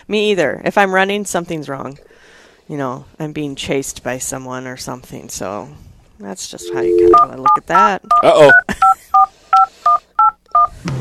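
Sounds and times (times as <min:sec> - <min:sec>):
speech: 0:00.0 - 0:08.8
touch-tone telephone dialing beeps: 0:06.6 - 0:10.7.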